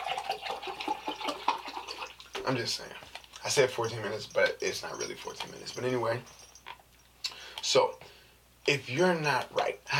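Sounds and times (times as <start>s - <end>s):
spilled water splashing and trickling: 0.0s - 5.8s
speech: 2.5s - 6.4s, 7.7s - 8.0s, 8.7s - 9.9s.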